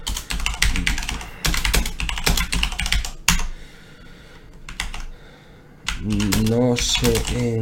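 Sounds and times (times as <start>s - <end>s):
typing program code on a new computer keyboard: 0.0s - 3.5s, 4.7s - 5.1s, 5.9s - 7.6s
speech: 6.1s - 7.6s.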